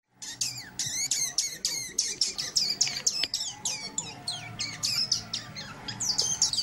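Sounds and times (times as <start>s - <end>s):
degu: 0.2s - 6.6s.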